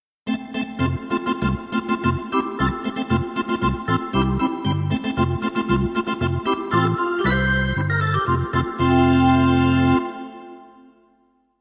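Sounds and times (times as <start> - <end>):
arena organ playing: 0.3 - 10.9.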